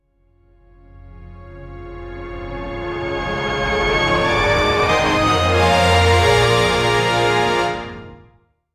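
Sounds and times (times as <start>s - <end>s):
uplifting orchestral rise: 1.4s - 8.3s.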